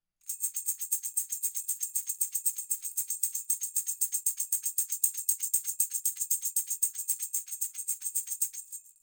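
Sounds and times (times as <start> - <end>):
tambourine: 0.2 - 9.0.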